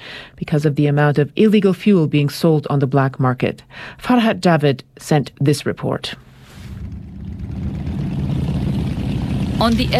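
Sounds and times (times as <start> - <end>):
speech: 0.5 - 6.3, 9.6 - 9.9
many motorbike engines running together: 6.7 - 9.9.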